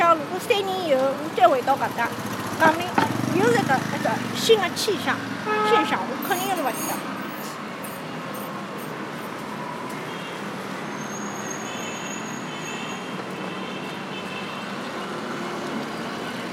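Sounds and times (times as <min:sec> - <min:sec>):
passing motorcycles in street traffic: 0:00.0 - 0:09.2
passing cars in street traffic: 0:00.0 - 0:16.5
speech: 0:01.5 - 0:07.2.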